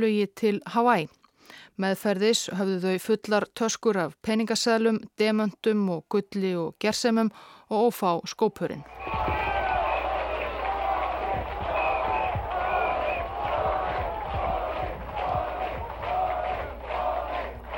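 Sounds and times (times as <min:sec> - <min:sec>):
speech: 0:00.0 - 0:09.5
large outdoor crowd on EDSA in Manila cheering and chanting in celebration: 0:08.8 - 0:17.7.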